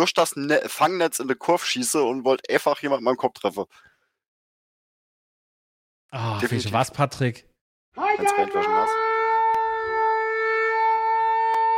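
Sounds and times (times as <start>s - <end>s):
speech: 0.0s - 3.9s, 6.1s - 9.2s
civil defense warning siren wail imitated by a voice: 8.0s - 11.7s.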